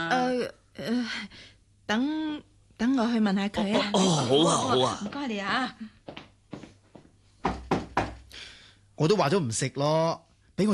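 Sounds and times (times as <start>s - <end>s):
speech: 0.0s - 6.2s, 9.0s - 10.7s
knocking on a door: 7.4s - 8.3s.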